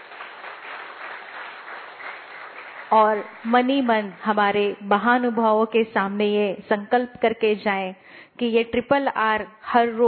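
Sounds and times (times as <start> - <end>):
audience applause at a motivational gathering: 0.0 - 3.8
speech: 2.9 - 10.0.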